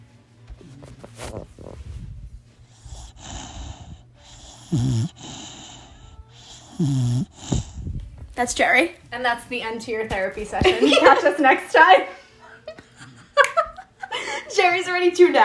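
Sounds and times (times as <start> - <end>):
pet snoring: 0.5 - 8.0
speech: 4.7 - 5.3, 6.8 - 7.6, 8.4 - 12.2, 14.6 - 15.4.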